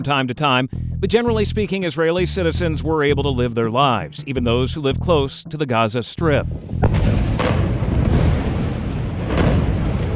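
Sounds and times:
speech: 0:00.0 - 0:07.2
dense barrage of gunfire during the Hamas surprise attack on Israel: 0:06.8 - 0:10.1
rocket fire during the Hamas surprise attack on Israel: 0:06.8 - 0:10.1
sharp blasts: 0:06.8 - 0:10.1.

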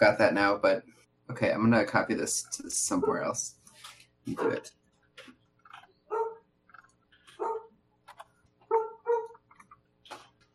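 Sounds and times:
speech: 0:00.0 - 0:03.6, 0:04.2 - 0:05.3
dog barking in the distance with high yappy barks: 0:06.1 - 0:06.4, 0:07.4 - 0:07.7, 0:08.7 - 0:09.4.

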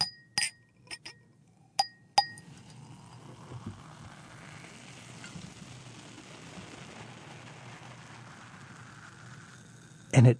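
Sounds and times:
bright glass clinks: 0:00.0 - 0:01.2, 0:01.8 - 0:02.4.

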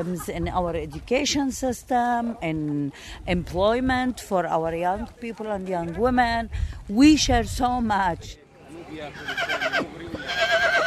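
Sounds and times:
speech: 0:00.0 - 0:10.8
Arabian colt neighing at a horse show: 0:09.1 - 0:10.8.

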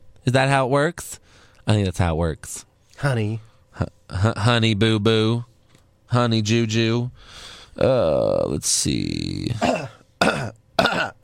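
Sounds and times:
speech: 0:00.2 - 0:05.5, 0:06.1 - 0:10.4
throat clearing into a microphone: 0:09.6 - 0:11.2.

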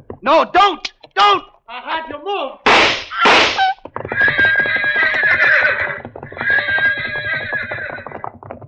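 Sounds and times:
speech: 0:00.2 - 0:04.4
gunshots: 0:02.7 - 0:03.8
pack horses rearing and neighing: 0:03.1 - 0:08.4.

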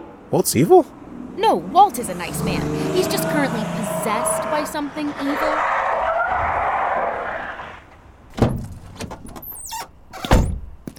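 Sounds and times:
car engine rumbling: 0:00.0 - 0:10.8
speech: 0:00.3 - 0:05.8
sharp clunks: 0:08.3 - 0:10.9.

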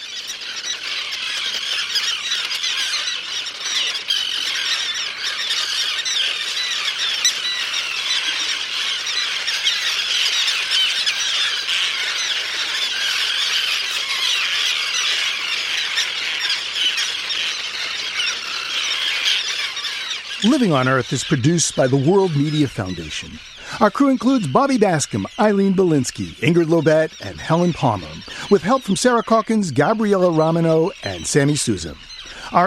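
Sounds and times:
common and roseate terns crying at a nesting colony on an island: 0:00.0 - 0:32.6
speech: 0:20.4 - 0:32.6.

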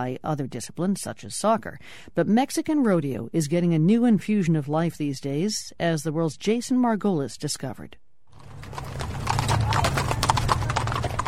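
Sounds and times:
speech: 0:00.0 - 0:08.0, 0:08.6 - 0:09.1
horses' hooves clip-clopping as cowboys ride through a small town: 0:08.4 - 0:11.2.

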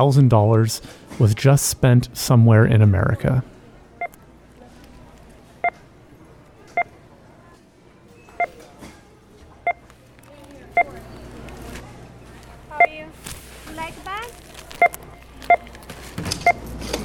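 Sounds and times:
speech: 0:00.0 - 0:03.5
indistinct store murmur and faint chatter: 0:00.0 - 0:17.0
checkout scanner beeps at a checkout line in the Bay Area: 0:03.8 - 0:04.4, 0:05.0 - 0:07.2, 0:08.0 - 0:08.7, 0:09.6 - 0:13.2, 0:14.6 - 0:17.0.

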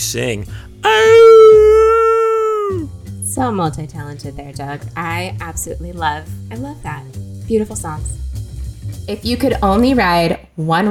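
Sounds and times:
speech: 0:00.1 - 0:01.2, 0:02.7 - 0:08.2, 0:09.1 - 0:10.8
person imitating a dog's howl: 0:00.8 - 0:02.9.

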